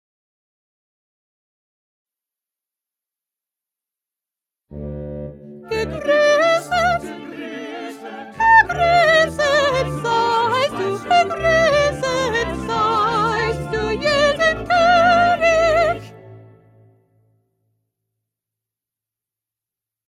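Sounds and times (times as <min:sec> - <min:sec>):
first soprano singing: 0:05.5 - 0:16.4.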